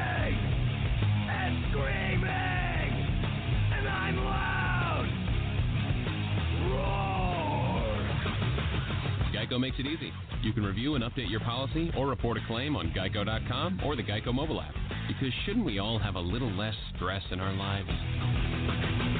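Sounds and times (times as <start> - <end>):
raw voice yelling in long strained bursts: 0.0 - 0.4, 1.3 - 2.9, 3.7 - 5.1, 6.6 - 8.2
early-1990s-style heavy metal with distorted guitars and pounding drums: 0.0 - 19.1
speech: 9.6 - 18.4.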